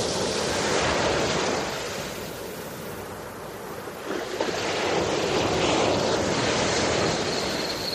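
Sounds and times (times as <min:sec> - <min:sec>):
gusty wind: 0:00.0 - 0:07.9
sea waves rolling and washing: 0:00.0 - 0:07.9.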